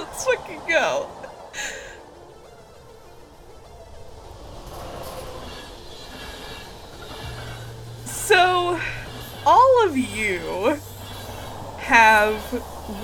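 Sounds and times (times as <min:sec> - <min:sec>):
train rolling on rails: 0:00.0 - 0:13.0
speech: 0:00.2 - 0:01.8, 0:09.8 - 0:10.9, 0:11.9 - 0:13.0
train wheel squeal: 0:04.3 - 0:13.0
faint metallic screeches: 0:04.6 - 0:13.0.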